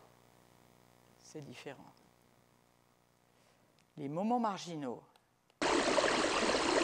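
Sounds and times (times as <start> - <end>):
speech: 1.3 - 2.0, 4.0 - 5.1
natural stream water flowing with fine bubbling: 5.6 - 6.8.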